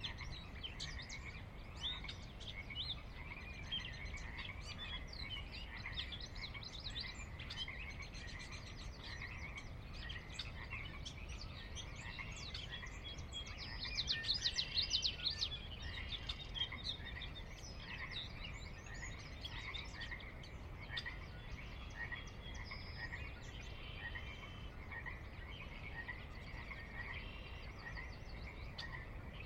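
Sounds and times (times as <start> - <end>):
Pacific chorus frogs calling at dusk in a Cascades valley, Washington, USA: 0.0 - 29.4.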